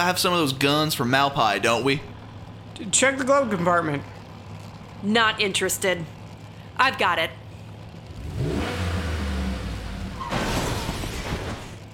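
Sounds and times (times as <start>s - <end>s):
speech: 0.0s - 2.2s, 2.8s - 4.2s, 5.0s - 6.2s, 6.8s - 7.4s
truck engine revving: 7.8s - 11.8s.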